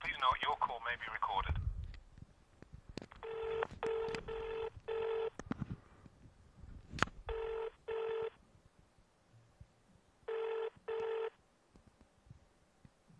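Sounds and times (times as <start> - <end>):
speech: 0.2 - 1.6
telephone keypad tones dialing an emergency number: 3.2 - 5.4, 7.3 - 8.4, 10.3 - 11.4.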